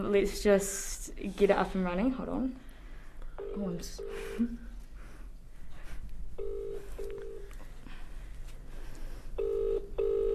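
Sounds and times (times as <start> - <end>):
speech: 0.0 - 2.7, 3.6 - 4.6
constant low hum: 0.0 - 10.3
phone ringback tone in double pulses: 3.4 - 4.5, 6.4 - 7.5, 9.4 - 10.3.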